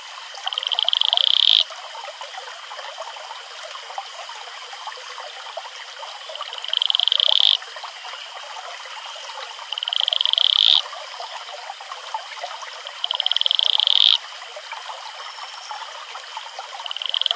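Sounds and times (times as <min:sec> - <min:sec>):
stream flowing: 0:00.0 - 0:17.3
male Atelopus franciscus advertisement call trills: 0:00.4 - 0:01.7, 0:06.4 - 0:07.6, 0:09.6 - 0:10.8, 0:12.9 - 0:14.2, 0:16.7 - 0:17.3.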